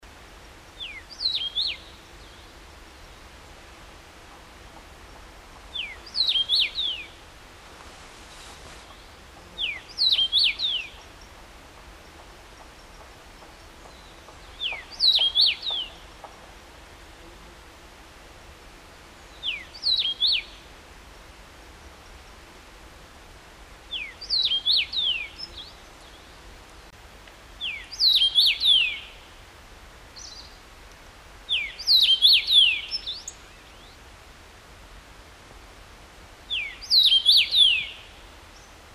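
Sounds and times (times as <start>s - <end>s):
Carpodacus erythrinus: 5.0s - 7.2s, 8.6s - 11.4s, 12.0s - 16.3s, 19.2s - 20.7s, 23.9s - 27.0s, 27.6s - 29.3s, 31.5s - 34.0s, 36.5s - 38.8s.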